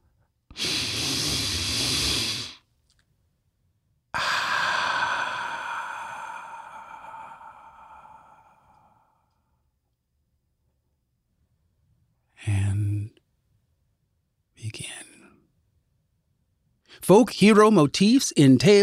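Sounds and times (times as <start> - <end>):
deep human breath: 0.5 - 2.6, 4.1 - 9.6
speech: 17.1 - 18.8.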